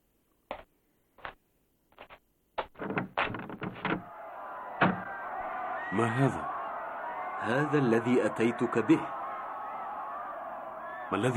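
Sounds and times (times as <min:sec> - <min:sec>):
knocks and clicks of a small window hatch: 0:02.0 - 0:04.0
soft thud: 0:04.8 - 0:05.1
speech: 0:05.9 - 0:06.5, 0:07.4 - 0:09.2, 0:11.1 - 0:11.3.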